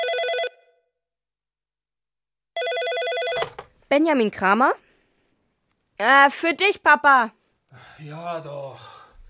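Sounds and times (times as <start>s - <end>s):
telephone ringing with trilling bell tone: 0.0s - 0.7s, 2.6s - 3.7s
speech: 3.9s - 4.8s, 6.0s - 9.0s.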